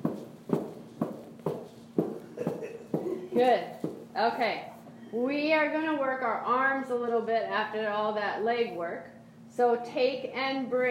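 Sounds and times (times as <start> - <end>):
feet stomping on the floor: 0.0 - 4.2
speech: 3.4 - 10.8.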